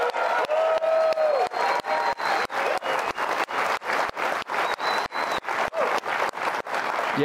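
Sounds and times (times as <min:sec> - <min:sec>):
full-house live studio audience in a TV studio applauding: 0:00.0 - 0:07.2
whistles from a studio audience: 0:01.1 - 0:03.5, 0:04.5 - 0:05.6.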